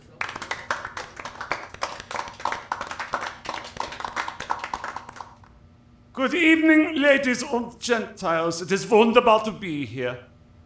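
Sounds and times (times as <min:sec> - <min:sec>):
audience applause: 0:00.0 - 0:05.4
speech: 0:06.2 - 0:10.3.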